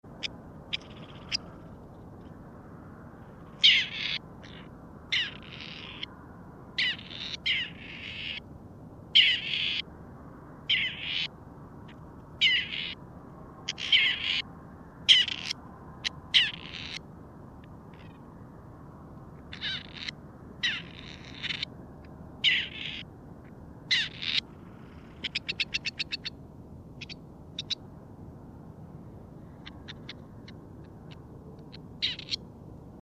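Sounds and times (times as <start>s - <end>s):
grey partridge calling: 0.2s - 1.6s, 3.6s - 6.1s, 6.8s - 8.4s, 9.2s - 9.8s, 10.7s - 11.3s, 12.4s - 13.0s, 13.7s - 14.4s, 15.1s - 15.6s, 19.5s - 21.7s, 22.4s - 23.0s, 23.9s - 24.4s, 25.1s - 26.3s, 27.0s - 27.8s, 29.6s - 30.6s, 31.7s - 32.4s.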